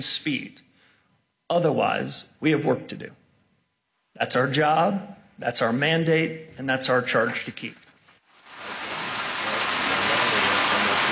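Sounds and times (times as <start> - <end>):
speech: 0.0 - 0.7, 1.5 - 3.2, 4.2 - 7.8
steady rain falling outdoors: 8.3 - 11.1.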